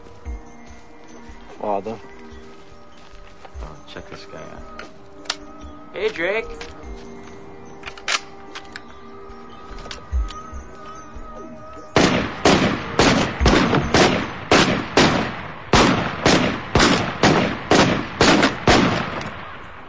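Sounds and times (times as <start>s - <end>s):
faint tonal hum: 0.0s - 12.0s
speech: 1.6s - 2.2s, 3.9s - 5.0s, 6.0s - 7.1s
rapid gunshots: 12.0s - 19.6s.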